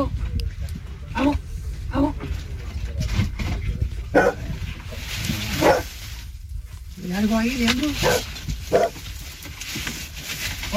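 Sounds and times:
steady low rumble of outdoor noise: 0.0 - 10.7
rescue dog barking at rubble: 4.1 - 4.4, 5.6 - 5.9, 8.0 - 9.0
speech: 7.4 - 8.3.

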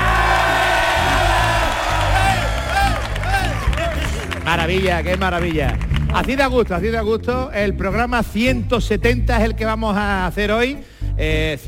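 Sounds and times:
individual whoops from the crowd: 0.0 - 4.2
large live crowd shouting and cheering: 0.0 - 6.2
speech: 4.6 - 11.6.

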